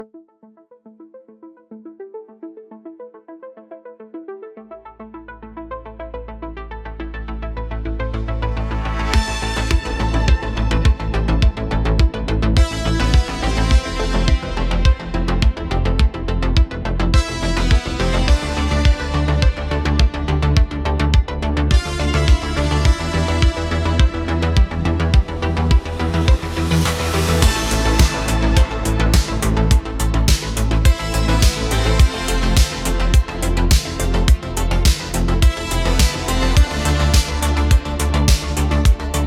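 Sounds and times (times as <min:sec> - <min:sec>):
arpeggiated analog synths: 0:00.1 - 0:39.2
steady driving beat: 0:09.2 - 0:39.2.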